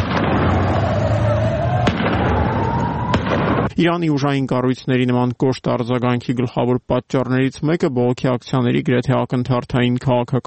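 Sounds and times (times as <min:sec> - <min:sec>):
gunfire from security forces on a residential rooftop in Iran: 0:00.0 - 0:01.2, 0:01.8 - 0:02.5, 0:03.1 - 0:03.7
speech: 0:03.8 - 0:10.4.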